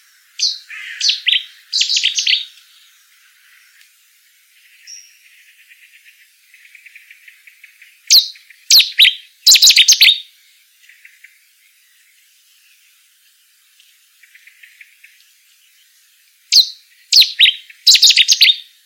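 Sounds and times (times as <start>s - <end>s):
bouscarle calling: 0.4s - 3.8s, 4.6s - 10.2s, 16.5s - 18.7s.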